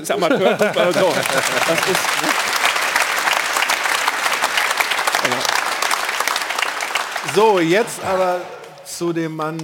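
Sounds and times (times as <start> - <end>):
speech: 0.0 - 2.6, 7.3 - 9.6
laughter: 0.0 - 3.0
studio audience applause: 0.0 - 8.8.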